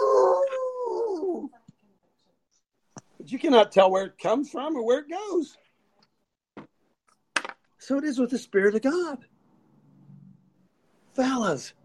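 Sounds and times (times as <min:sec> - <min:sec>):
dog howling: 0:00.0 - 0:01.5
speech: 0:03.3 - 0:05.6, 0:07.8 - 0:09.3, 0:11.2 - 0:11.8.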